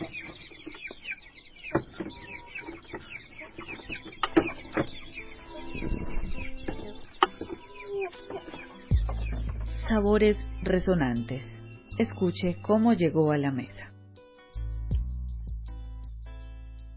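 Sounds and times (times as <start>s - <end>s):
household-raised chickens clucking: 0.0s - 10.0s
speech: 10.0s - 13.9s.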